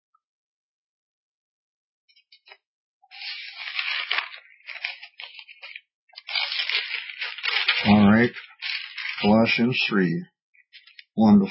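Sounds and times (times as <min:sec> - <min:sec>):
thin paper pages being turned: 0:03.1 - 0:09.7, 0:10.7 - 0:11.2
speech: 0:07.8 - 0:08.5, 0:09.2 - 0:10.3, 0:11.2 - 0:11.4.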